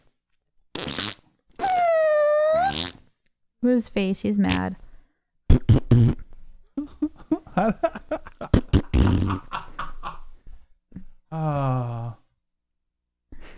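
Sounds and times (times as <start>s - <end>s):
fart sound effects: 0.8s - 3.0s, 5.5s - 6.3s, 8.6s - 9.5s
speech: 3.6s - 4.8s, 7.6s - 9.6s
laughter: 6.8s - 10.3s.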